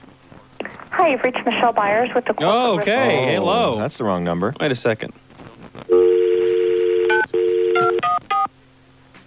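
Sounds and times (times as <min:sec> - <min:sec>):
speech: 0:01.0 - 0:05.2
telephone keypad tones: 0:06.0 - 0:08.5.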